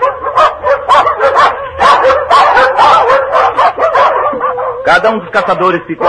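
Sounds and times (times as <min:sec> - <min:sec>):
pack of dogs barking and yipping in the distance: 0:00.0 - 0:06.0
speech: 0:04.9 - 0:06.0.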